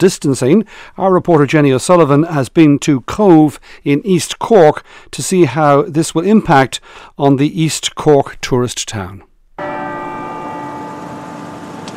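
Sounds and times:
speech: 0.0s - 9.3s
cathedral bells in Cobh ringing the quarter hour: 9.6s - 11.9s.

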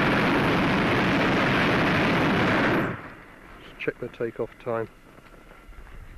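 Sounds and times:
hot air balloon burner roaring at takeoff: 0.0s - 4.1s
speech: 3.9s - 5.0s.

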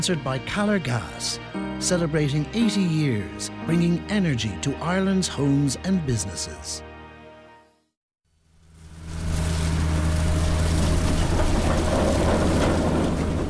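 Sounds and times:
speech: 0.0s - 6.9s
potato harvester engine running at full throttle on a farm near Swords in North County Dublin: 8.8s - 13.4s.

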